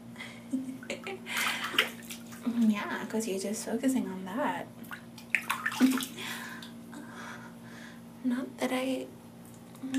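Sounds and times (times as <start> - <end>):
water splashing and sloshing as a body is washed in a bath: 1.0 - 3.1, 4.8 - 6.7
speech: 2.8 - 4.8, 8.3 - 9.2.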